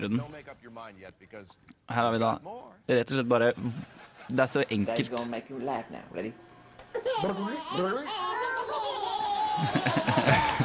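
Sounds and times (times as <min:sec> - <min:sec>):
speech: 0:00.0 - 0:08.4, 0:09.6 - 0:10.6
quadruplet babies giggling and babbling in a video: 0:06.9 - 0:10.6.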